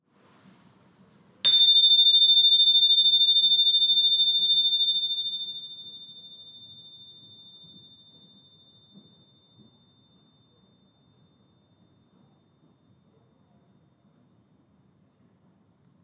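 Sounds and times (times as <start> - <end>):
energy chime: 1.5 - 9.3.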